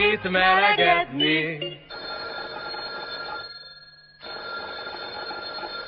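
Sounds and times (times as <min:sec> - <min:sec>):
speech: 0:00.1 - 0:01.7
telephone ringing with harsh electric bell: 0:01.6 - 0:05.8.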